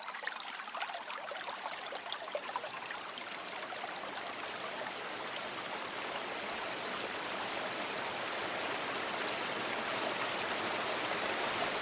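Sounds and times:
small upland river flowing over stones near its source: 0:00.1 - 0:11.8.

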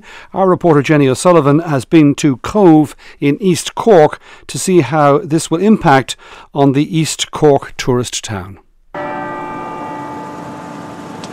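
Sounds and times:
speech: 0:00.0 - 0:09.1
cathedral church bells in Cove, East Cork ringing the quarter hours: 0:09.0 - 0:11.3.

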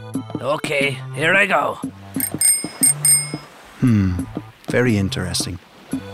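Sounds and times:
speech: 0:00.1 - 0:02.0, 0:03.8 - 0:05.7
small bronze bell ringing: 0:02.2 - 0:03.5.

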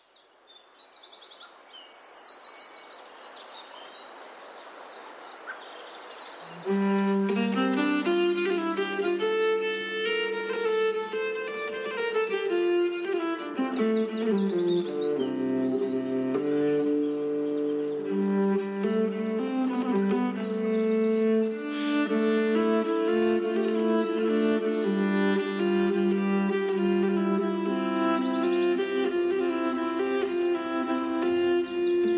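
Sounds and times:
woodland birds chirping and twittering: 0:00.7 - 0:32.1
sustained melodic music: 0:06.6 - 0:32.1.

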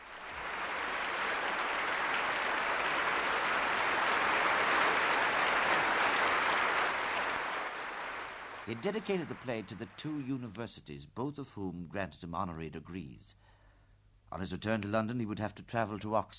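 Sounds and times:
audience clapping hands: 0:00.0 - 0:10.3
speech: 0:08.7 - 0:13.5, 0:14.3 - 0:16.3.

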